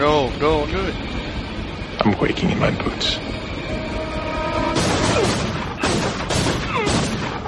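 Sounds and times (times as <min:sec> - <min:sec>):
speech: 0:00.2 - 0:01.2, 0:02.0 - 0:03.8
gunshots fired in a drama: 0:04.8 - 0:07.4.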